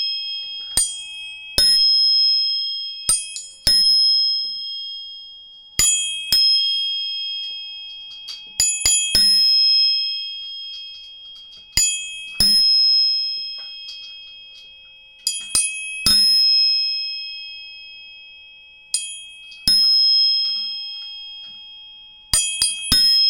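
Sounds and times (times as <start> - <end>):
tuning fork struck with metallic tap and bright ringing tone: 0.0 - 23.2.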